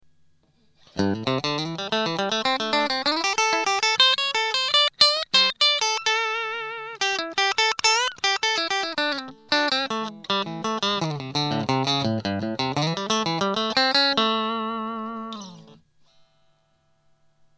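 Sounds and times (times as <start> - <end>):
electric guitar with bridge pickup: 0.4 - 16.6.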